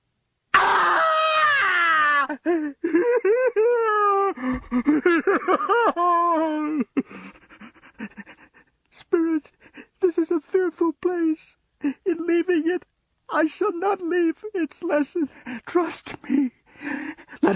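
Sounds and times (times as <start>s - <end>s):
man screaming in anguish: 0.5s - 2.4s
man sobbing and wailing: 0.6s - 17.5s
speech: 14.9s - 16.5s.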